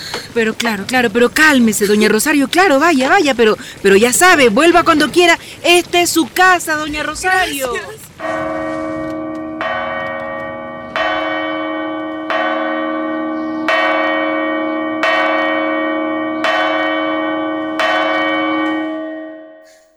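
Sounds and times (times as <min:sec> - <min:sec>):
speech: 0:00.4 - 0:08.5
church bell tolling at twelve o'clock: 0:08.2 - 0:19.7.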